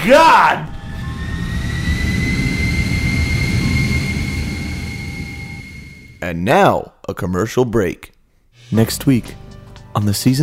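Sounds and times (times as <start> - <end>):
speech: 0.0 - 0.7, 6.2 - 8.1, 8.7 - 9.4, 10.0 - 10.4
spacecraft engine roar on landing approach with landing gear deployed: 0.0 - 6.2.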